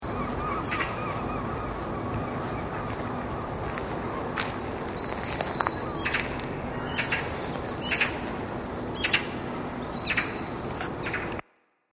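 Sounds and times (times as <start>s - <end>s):
magpie: 0.0s - 11.4s.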